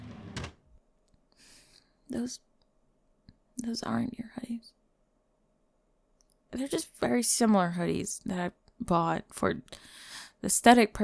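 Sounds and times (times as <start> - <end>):
bedroom drawer sliding open with a rasping scrape: 0.0 - 0.6
louder clunk: 0.0 - 0.6
speech: 2.1 - 2.5, 3.6 - 4.8, 6.6 - 11.0.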